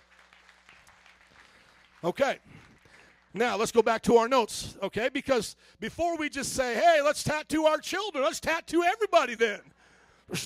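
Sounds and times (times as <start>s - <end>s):
audience hand clapping: 0.0s - 4.0s
speech: 2.0s - 2.7s, 3.3s - 9.7s, 10.3s - 10.4s.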